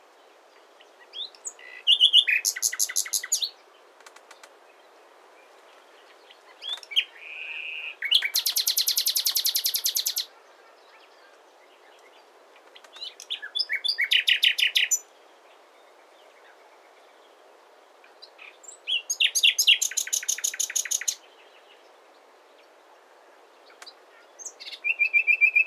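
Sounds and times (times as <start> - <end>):
common nightingale Luscinia megarhynchos song: 0.0 - 25.6
soft clicks: 4.0 - 4.6.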